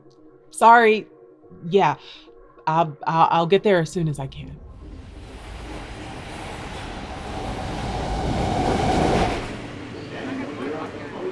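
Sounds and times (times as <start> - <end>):
speech: 0.5 - 4.6
subway train rumbling: 3.9 - 11.3.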